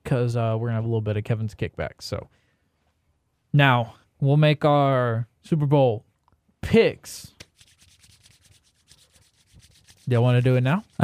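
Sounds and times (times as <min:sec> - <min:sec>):
speech: 0:00.1 - 0:02.4, 0:03.5 - 0:07.4, 0:10.1 - 0:11.0
hands rubbing briskly together against the microphone: 0:07.4 - 0:11.0.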